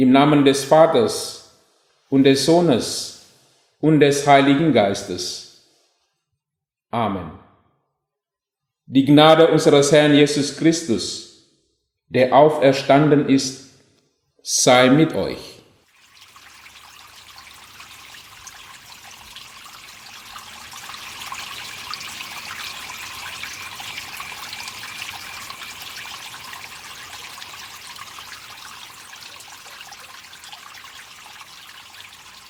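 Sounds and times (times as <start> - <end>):
speech: 0.0 - 1.4, 2.1 - 3.1, 3.8 - 5.4, 6.9 - 7.4, 8.9 - 11.3, 12.1 - 13.6, 14.4 - 15.5
water trickling: 15.8 - 32.4.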